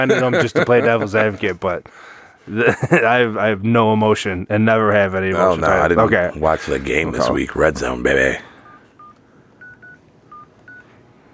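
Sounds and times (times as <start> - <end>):
laughter: 0.0 - 1.7, 2.5 - 3.3
speech: 0.0 - 8.5
low hum: 0.0 - 11.3
touch-tone beeps of a phone number being dialed: 8.6 - 10.9.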